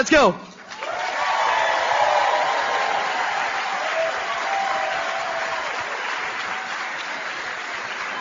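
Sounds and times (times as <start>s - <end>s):
large audience applauding loudly: 0.6s - 8.2s
faint cheers: 0.8s - 6.8s.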